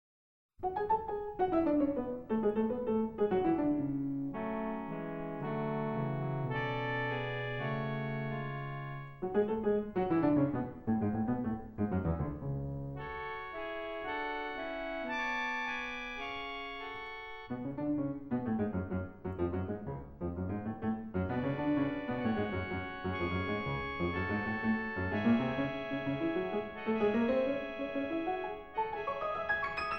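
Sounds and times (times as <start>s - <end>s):
piano playing a scherzo: 0.6s - 29.9s
harmonium playing a scherzo: 13.2s - 17.5s, 21.5s - 29.9s.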